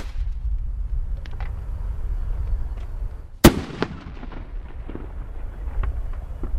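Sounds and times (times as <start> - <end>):
steady low outdoor rumble: 0.0 - 6.5
bird-scaring flare pistol shot to frighten herons: 3.4 - 5.1.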